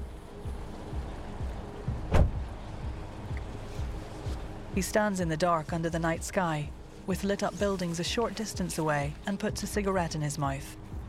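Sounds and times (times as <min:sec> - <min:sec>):
steady outdoor noise: 0:00.0 - 0:11.0
car door opening with a sharp clunk: 0:01.9 - 0:02.5
speech: 0:04.8 - 0:10.8.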